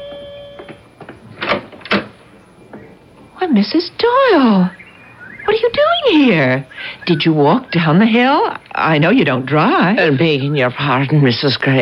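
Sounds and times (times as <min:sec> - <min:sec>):
front door clunking as it swings and knocks: 0:00.0 - 0:02.9
faint steady room hum: 0:00.0 - 0:11.8
front door latch clicks: 0:01.4 - 0:02.2
speech: 0:03.5 - 0:04.8, 0:05.7 - 0:11.8.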